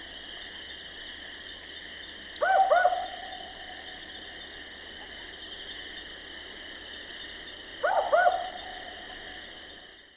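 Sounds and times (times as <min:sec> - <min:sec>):
steady background hiss: 0:00.0 - 0:10.1
Barking owl Ninox connivens double bark: 0:02.4 - 0:03.3, 0:07.8 - 0:08.8.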